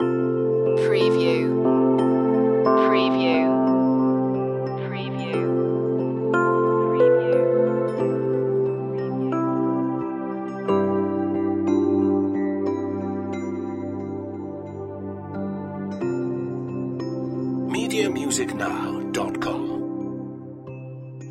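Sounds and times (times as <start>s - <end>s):
angelic healing music loop: 0.0s - 21.3s.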